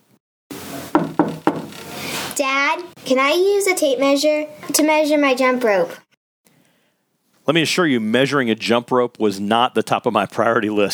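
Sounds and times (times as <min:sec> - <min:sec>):
knocks on a bedroom door: 0:00.9 - 0:01.7
speech: 0:02.4 - 0:06.0, 0:07.5 - 0:10.9
steady hiss: 0:06.5 - 0:10.9.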